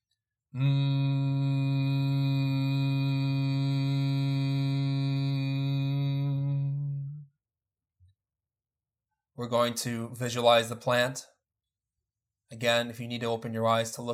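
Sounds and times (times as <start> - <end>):
speech: 0.5 - 1.1, 9.4 - 11.3, 12.5 - 14.1
voice humming a prolonged low buzzy M mantra: 0.6 - 7.3.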